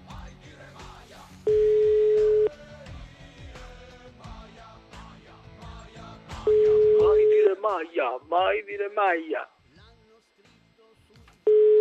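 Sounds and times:
telephone line tone while a number is dialed: 1.5 - 2.5, 6.5 - 7.6, 11.5 - 11.7
continuous louder sound: 5.8 - 11.7
speech: 7.7 - 9.5.

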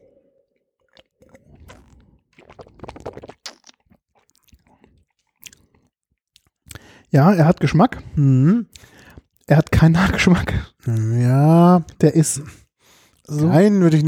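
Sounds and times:
wet slurping and gulps from someone sipping spring wine: 0.8 - 6.9, 8.7 - 9.5
speech: 7.1 - 8.8, 9.5 - 12.6, 13.3 - 14.0.

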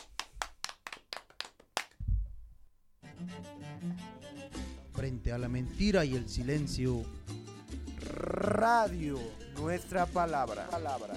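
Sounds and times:
small group clapping at the close of a cultural radio program: 0.0 - 2.0
low thump: 2.0 - 2.6
radio music bed: 3.0 - 11.1
speech: 5.0 - 7.2, 8.2 - 11.1.

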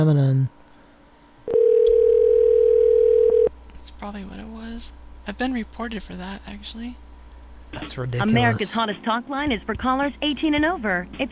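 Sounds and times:
speech: 0.0 - 0.6, 4.0 - 7.1, 7.7 - 11.3
telephone dial tone when placing a call to an adult talk line: 1.5 - 3.5
telephone click when placing a call: 1.8 - 2.1.

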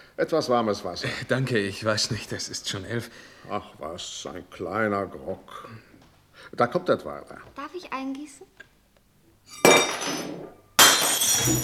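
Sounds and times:
speech: 0.2 - 8.7, 9.5 - 11.6
bright ringing clatter of a drinking glass: 9.5 - 11.6
drinking glass knocked over at a table: 9.5 - 11.6.

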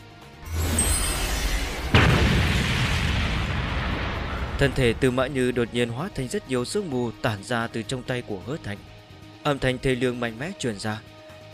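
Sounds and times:
sharp impact of a heavy slam on the ground: 0.5 - 5.4
ground exploding into a crater from a heavy slam: 1.9 - 5.8
speech: 4.6 - 11.2.

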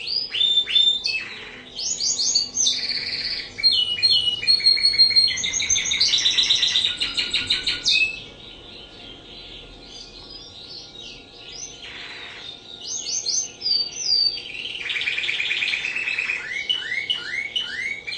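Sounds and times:
Spanish Timbrado canary rolling trill: 0.0 - 18.1
faint background chirps: 0.0 - 18.1.

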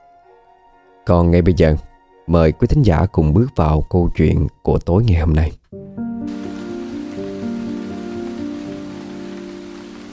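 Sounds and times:
speech: 1.0 - 5.6
heavy rain at night over a poor hamlet: 6.2 - 10.1.

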